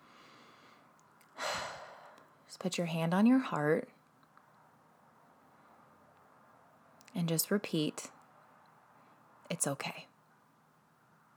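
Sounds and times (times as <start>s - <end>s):
slow deep inhale during a calming self-compassion exercise: 0.0s - 2.2s
speech: 2.5s - 4.0s, 7.3s - 8.2s, 9.5s - 10.1s.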